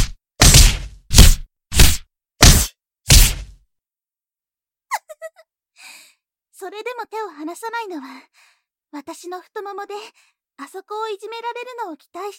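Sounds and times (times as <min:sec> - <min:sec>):
heavy punches landing on an unguarded body: 0:00.0 - 0:03.5
speech: 0:06.6 - 0:12.3.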